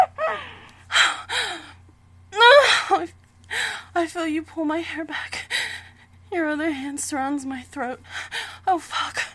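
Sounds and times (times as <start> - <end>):
person gasping: 0.2 - 1.6
speech: 4.2 - 5.5, 6.3 - 9.2.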